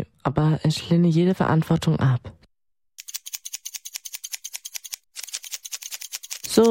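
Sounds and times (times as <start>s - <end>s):
speech: 0.2s - 2.4s
scissors snipping the tips of hair during a haircut: 3.0s - 6.6s.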